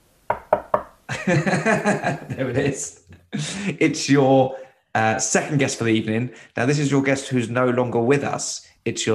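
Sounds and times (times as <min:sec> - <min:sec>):
sharp knocks on a door: 0:00.3 - 0:01.0
speech: 0:00.7 - 0:09.1
laughter: 0:01.1 - 0:04.0.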